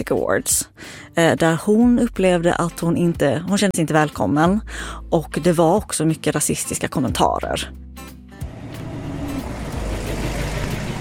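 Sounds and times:
speech: 0.0s - 8.2s
broad road noise: 8.4s - 10.9s
car engine rumble while driving along a city road: 8.4s - 10.9s.

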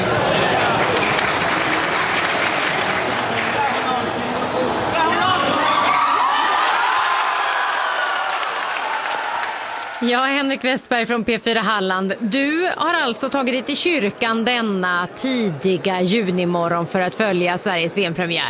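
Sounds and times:
crowd in a church cheering and applauding a goal during a World Cup match: 0.0s - 10.4s
speech: 10.1s - 18.4s.

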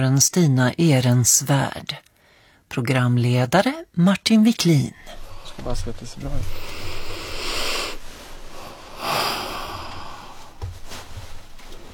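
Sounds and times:
speech: 0.0s - 2.1s, 2.7s - 6.9s
deep breaths from an interview guest: 2.2s - 2.7s, 5.0s - 11.1s.

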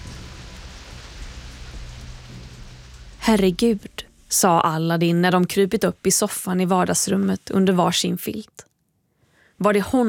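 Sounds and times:
heavy rain pouring down: 0.0s - 4.4s
speech: 3.2s - 8.7s, 9.6s - 10.0s.

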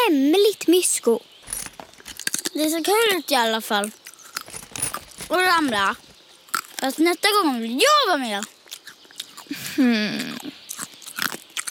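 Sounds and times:
speech: 0.0s - 1.4s, 2.6s - 4.6s, 5.3s - 6.1s, 6.8s - 8.5s, 9.5s - 10.3s
crunchy chewing of snacks: 1.5s - 2.6s, 3.8s - 7.2s, 8.2s - 11.6s.

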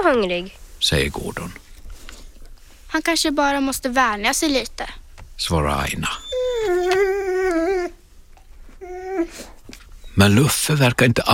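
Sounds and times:
speech: 0.0s - 1.7s, 2.9s - 7.1s, 10.2s - 11.3s
dog howling loudly: 6.0s - 8.0s, 8.8s - 10.2s.

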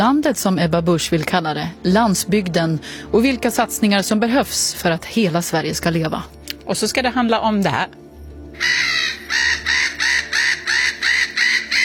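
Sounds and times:
speech: 0.0s - 8.0s, 8.6s - 9.5s
gulls squawking harshly: 8.6s - 11.8s.

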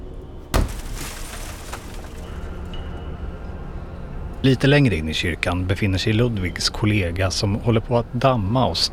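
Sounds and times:
heavy thud inside a church: 0.5s - 2.4s
crackling and rumbling debris inside a church: 0.5s - 3.1s
crashing shattering break inside a church: 0.6s - 2.8s
speech: 4.4s - 8.9s.

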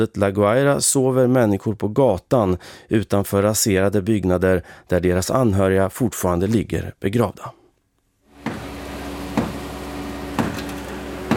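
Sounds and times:
speech: 0.0s - 7.6s
hammer banging on concrete rubble of a collapsed house in La Guaira: 8.4s - 9.7s, 10.3s - 11.3s.

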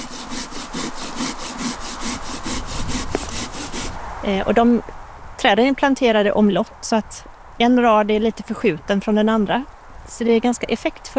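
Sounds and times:
hand saw cutting apple-tree branches during pruning in a fruit gene bank orchard: 0.0s - 4.0s
speech: 4.2s - 11.1s.

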